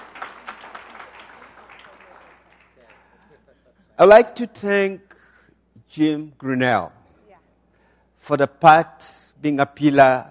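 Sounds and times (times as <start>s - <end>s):
gathering of men clapping in appreciation: 0.0s - 3.6s
speech: 4.0s - 5.1s, 5.9s - 7.0s, 8.3s - 10.2s.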